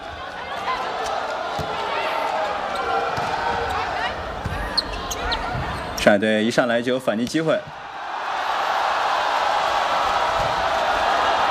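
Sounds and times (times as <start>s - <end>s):
crowd noise at a volleyball match: 0.0s - 11.4s
volleyball bouncing on the court before a serve: 3.2s - 3.8s, 4.4s - 4.9s
speech: 6.0s - 7.8s.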